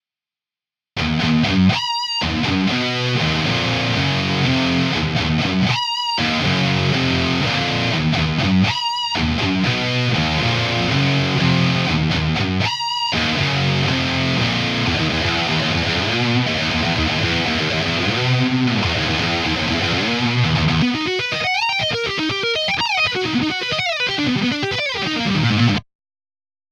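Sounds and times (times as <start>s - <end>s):
overdriven rhythm guitar in stereo: 1.0s - 25.8s.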